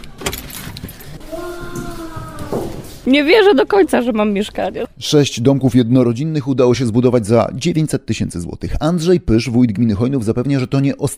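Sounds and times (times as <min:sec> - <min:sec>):
faint noise: 0:00.0 - 0:11.1
keys jangling while unlocking a door: 0:00.2 - 0:01.2
speech: 0:03.1 - 0:11.1.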